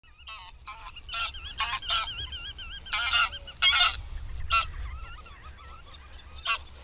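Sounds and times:
greylag goose honking: 0.2s - 6.8s.

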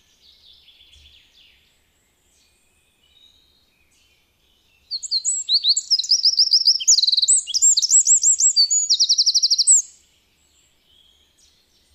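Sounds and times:
Eurasian wren singing with twittering notes, rolling trills and rattle: 3.1s - 10.0s.

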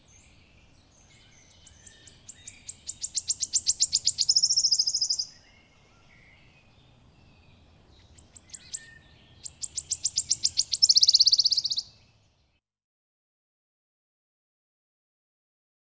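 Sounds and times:
wood warbler song: 0.0s - 12.6s.

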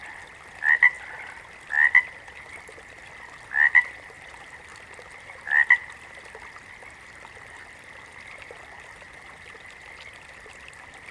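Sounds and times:
water frog croaking: 0.0s - 2.2s, 3.5s - 4.0s, 5.4s - 5.9s.

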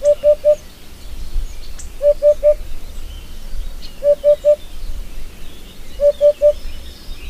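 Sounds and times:
Eurasian hoopoe hooting: 0.0s - 0.6s, 2.0s - 2.6s, 4.0s - 4.6s, 6.0s - 6.6s.

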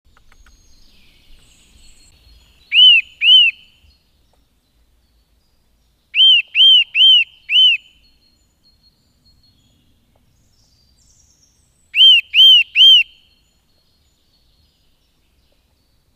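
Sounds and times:
Eurasian nuthatch giving loud piping whistles: 0.2s - 4.0s, 6.2s - 8.4s, 11.9s - 13.5s.

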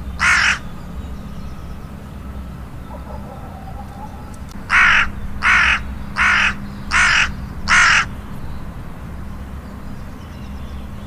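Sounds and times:
hooded crow cawing: 0.2s - 0.6s, 2.8s - 8.1s.

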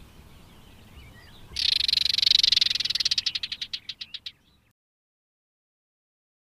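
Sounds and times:
barred warbler warbling and buzzing rattle: 1.5s - 3.8s.

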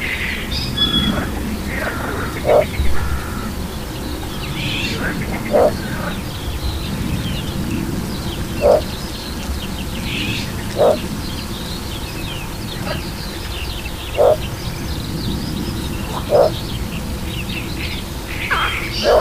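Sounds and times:
other birds calling: 0.0s - 19.1s
little bittern barking: 1.0s - 3.7s, 4.8s - 6.4s, 8.5s - 8.9s, 10.7s - 11.1s, 14.2s - 14.5s, 16.0s - 16.7s, 18.5s - 19.1s.

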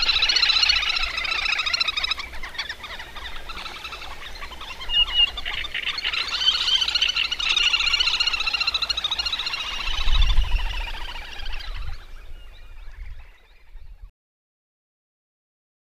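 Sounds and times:
little grebe trilling: 0.0s - 12.1s.

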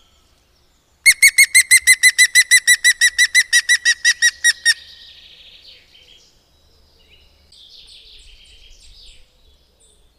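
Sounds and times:
European green woodpecker laughing call of ringing notes: 1.1s - 4.8s.

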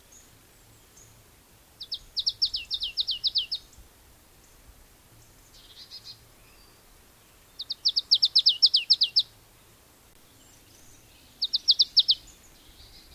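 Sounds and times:
faint hiss: 0.0s - 13.1s
marsh tit calling: 1.8s - 3.8s, 5.4s - 6.7s, 7.5s - 9.3s, 10.6s - 13.1s.

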